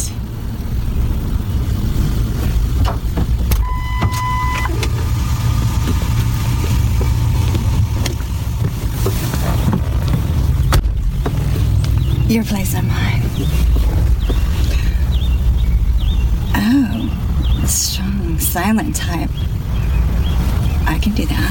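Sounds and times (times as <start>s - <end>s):
car engine idling with a loud low rumble: 0.0s - 21.5s
brief high tone: 3.6s - 5.3s
speech: 12.3s - 13.8s, 16.7s - 19.6s, 20.9s - 21.5s.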